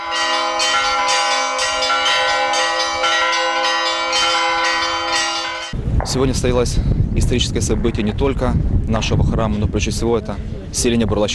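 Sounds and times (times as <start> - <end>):
newly consecrated church bells ringing a full peal in a village: 0.0 - 5.8
speech: 6.1 - 11.3.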